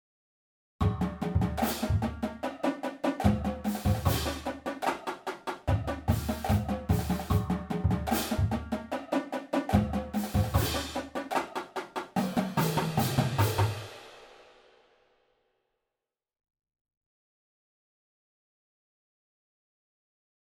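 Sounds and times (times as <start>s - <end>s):
drum groove: 0.8s - 14.6s.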